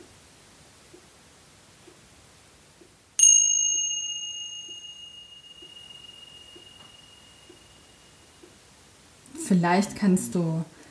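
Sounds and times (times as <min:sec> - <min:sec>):
small hand cymbal struck and ringing: 0:03.2 - 0:09.0
speech: 0:09.5 - 0:10.7.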